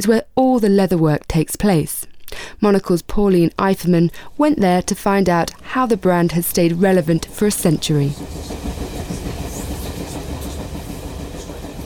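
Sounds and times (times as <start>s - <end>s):
speech: 0.0s - 8.8s
train rolling along tracks from New York City to Union, New Jersey: 5.9s - 11.8s.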